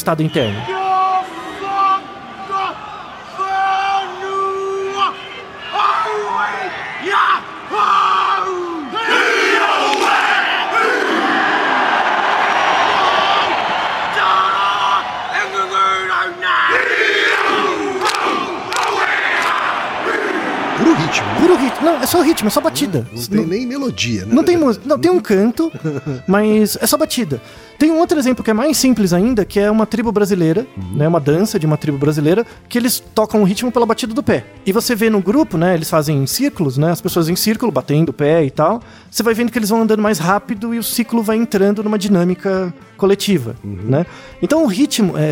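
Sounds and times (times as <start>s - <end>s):
speech: 0.0s - 0.8s, 21.1s - 45.3s
crowd noise: 0.0s - 25.1s
rhythmic shouted calls and forceful yells: 0.3s - 23.4s
large group of students chanting a Maori haka in unison: 5.4s - 14.2s, 16.7s - 22.1s.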